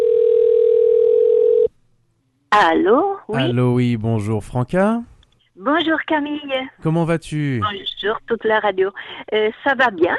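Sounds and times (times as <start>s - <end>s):
telephone dial tone as a call is placed: 0.0s - 1.7s
speech: 2.5s - 10.1s.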